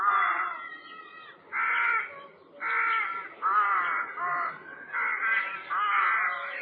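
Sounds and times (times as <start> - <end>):
crow cawing: 0.0 - 6.6.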